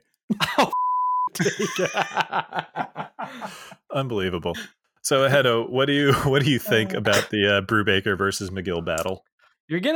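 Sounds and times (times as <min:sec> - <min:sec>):
censor bleep tone: 0:00.7 - 0:01.3
breathy laughter: 0:01.4 - 0:03.8
speech: 0:01.4 - 0:09.9.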